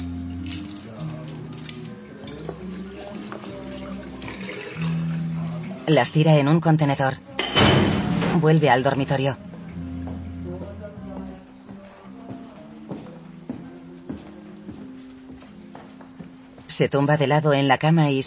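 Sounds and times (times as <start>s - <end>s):
liquid from bottles emptied into a washbasin in communal bathrooms: 2.3s - 5.9s
speech: 5.9s - 7.3s, 8.4s - 9.5s, 16.8s - 18.2s.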